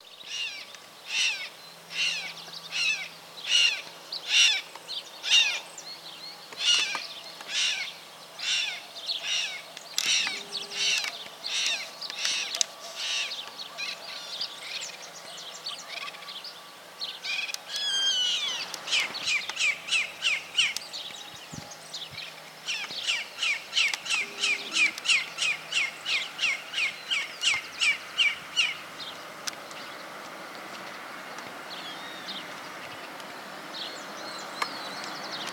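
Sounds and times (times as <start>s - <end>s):
chimango caracara calling: 0.2s - 5.8s, 6.6s - 16.4s, 17.2s - 21.4s, 22.3s - 29.2s.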